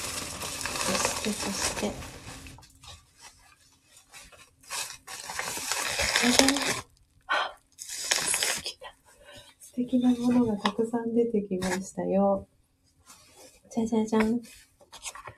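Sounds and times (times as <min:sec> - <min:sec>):
paper wrapping crinkling and rustling as a gift package is opened: 0:00.0 - 0:07.0, 0:07.8 - 0:10.8, 0:14.3 - 0:15.3
speech: 0:01.2 - 0:02.2, 0:06.2 - 0:06.8, 0:09.9 - 0:12.5, 0:13.8 - 0:14.6.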